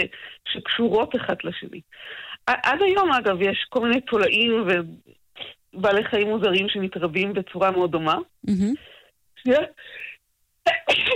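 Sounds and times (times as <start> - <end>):
speech: 0.0 - 11.0
person making short vocal noises and gasps: 8.4 - 9.1
person sneezing: 8.5 - 8.8.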